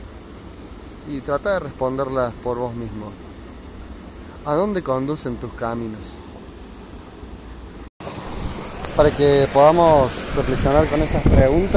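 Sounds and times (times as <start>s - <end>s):
speech: 1.0s - 3.3s, 4.4s - 6.2s, 9.0s - 11.7s
waterfall rushing water: 8.0s - 11.7s.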